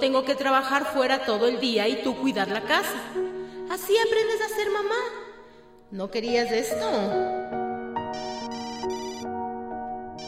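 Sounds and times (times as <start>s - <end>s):
speech: 0.0s - 5.2s, 5.9s - 7.4s
mobile phone ringtone with bright electronic melody: 8.1s - 9.4s.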